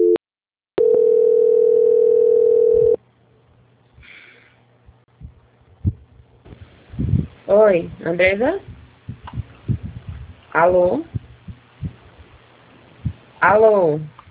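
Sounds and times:
telephone line tone during a call transfer: 0:00.0 - 0:00.2, 0:00.8 - 0:03.0
faint low hum on a quiet telephone line: 0:00.8 - 0:14.2
speech: 0:07.5 - 0:08.7, 0:10.6 - 0:11.2, 0:13.4 - 0:14.2.

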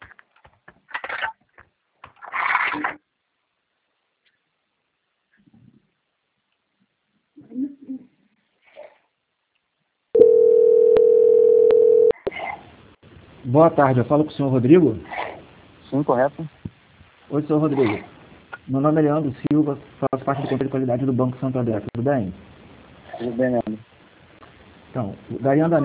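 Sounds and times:
telephone line tone while a bank call is transferred: 0:10.2 - 0:12.2
speech: 0:13.6 - 0:15.2, 0:15.9 - 0:16.6, 0:17.3 - 0:22.5, 0:23.2 - 0:23.9, 0:25.0 - 0:25.8.

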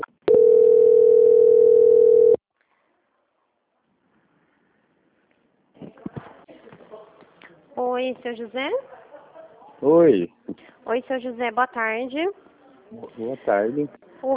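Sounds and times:
telephone call transfer tone: 0:00.3 - 0:02.4
speech: 0:08.0 - 0:08.9, 0:09.8 - 0:14.3.

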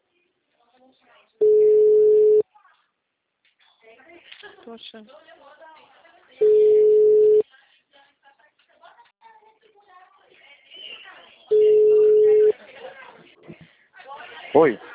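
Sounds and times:
speech: 0:00.9 - 0:01.6, 0:04.7 - 0:05.4, 0:14.6 - 0:14.9
telephone tone after a dropped call: 0:01.4 - 0:02.4, 0:06.4 - 0:07.4, 0:11.5 - 0:12.5.

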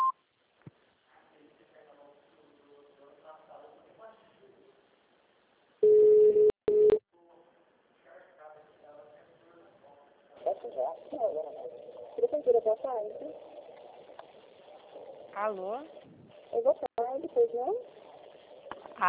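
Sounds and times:
automated phone menu beep on a municipal office line: 0:05.8 - 0:07.0
quiet recorded voice prompt: 0:10.4 - 0:13.8, 0:15.4 - 0:17.9
speech: 0:12.4 - 0:13.6, 0:15.4 - 0:16.9, 0:17.5 - 0:18.0.

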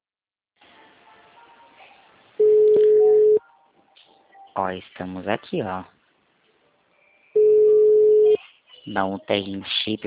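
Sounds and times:
faint noise: 0:00.6 - 0:10.0
telephone tone while calling a customer: 0:02.4 - 0:03.4, 0:07.4 - 0:08.4
speech: 0:04.6 - 0:06.0, 0:08.9 - 0:10.0.

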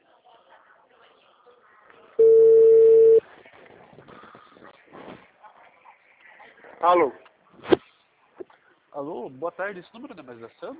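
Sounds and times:
faint low noise: 0:00.0 - 0:10.7
telephone dial tone while placing a call: 0:02.2 - 0:03.2
speech: 0:06.8 - 0:07.2, 0:09.0 - 0:10.7.

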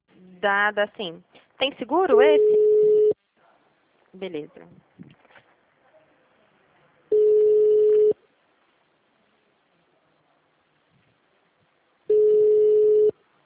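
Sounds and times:
speech: 0:00.4 - 0:02.6, 0:04.2 - 0:05.1
low telephone ringing tones of a phone calling out: 0:02.4 - 0:03.2, 0:07.1 - 0:08.2, 0:12.1 - 0:13.2.

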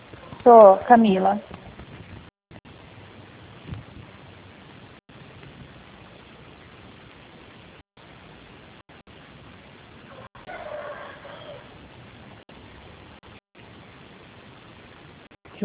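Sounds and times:
steady hiss of static: 0:00.0 - 0:15.6
speech: 0:00.4 - 0:01.6
rooster crowing: 0:10.1 - 0:11.8.

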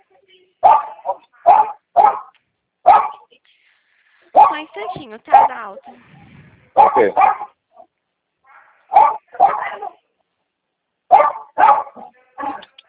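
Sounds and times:
dog barking: 0:00.6 - 0:03.3, 0:04.4 - 0:05.5, 0:06.8 - 0:07.9, 0:08.5 - 0:10.0, 0:11.1 - 0:12.7
speech: 0:04.8 - 0:06.2, 0:06.9 - 0:07.5.

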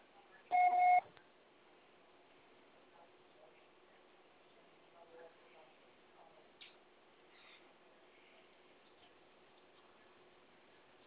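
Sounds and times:
voicemail beep signalling the start of message recording: 0:00.5 - 0:01.1.

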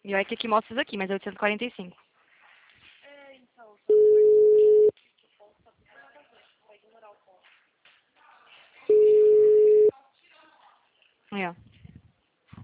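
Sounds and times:
speech: 0:00.1 - 0:02.1, 0:11.3 - 0:11.7
ringback tone of an unanswered outgoing phone call: 0:03.9 - 0:04.9, 0:08.9 - 0:09.9.

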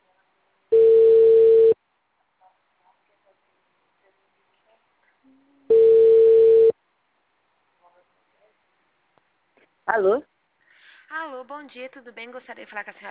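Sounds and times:
ringback tone of a telephone call being placed: 0:00.7 - 0:01.8, 0:05.7 - 0:06.7
speech: 0:09.9 - 0:10.3, 0:11.1 - 0:13.0.

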